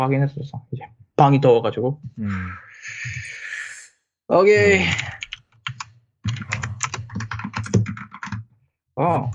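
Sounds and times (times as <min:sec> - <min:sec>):
speech: 0:00.0 - 0:03.3, 0:04.3 - 0:05.2, 0:09.0 - 0:09.3
breathy sounds: 0:02.2 - 0:03.9
typing on a mechanical gaming keyboard: 0:04.8 - 0:08.4.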